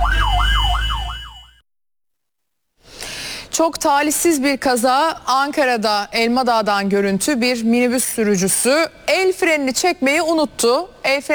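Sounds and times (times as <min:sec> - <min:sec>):
fire engine siren wailing: 0:00.0 - 0:01.6
speech: 0:03.6 - 0:11.3.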